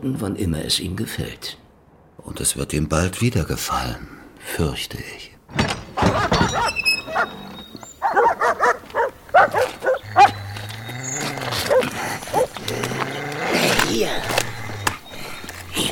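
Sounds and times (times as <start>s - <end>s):
speech: 0.0s - 1.6s, 2.2s - 7.5s
dogs barking: 6.0s - 15.6s.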